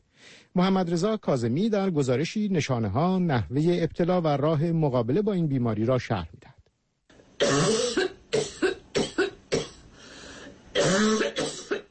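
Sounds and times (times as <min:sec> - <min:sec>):
speech: 0:00.5 - 0:06.6
harsh wet coughs: 0:07.4 - 0:09.9, 0:10.8 - 0:11.8.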